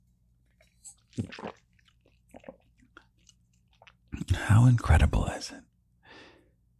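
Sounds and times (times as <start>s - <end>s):
lip noises: 0.5s - 4.3s
person sipping water: 0.5s - 4.4s
sharp slurp and gulp: 0.5s - 4.5s
soft swallows: 0.6s - 4.3s
speech: 1.2s - 1.6s, 4.6s - 5.7s.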